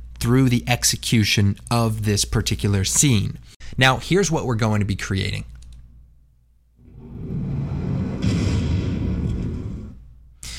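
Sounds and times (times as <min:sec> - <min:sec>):
speech: 0:00.2 - 0:05.6
depth charge underwater explosion: 0:06.8 - 0:10.1.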